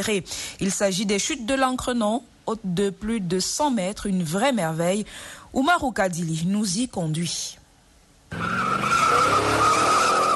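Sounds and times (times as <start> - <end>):
speech: 0.0 - 7.6, 8.3 - 9.0
car engine whining on a forest track: 8.3 - 10.3
rough rumbling road noise on a forest track: 8.3 - 10.3.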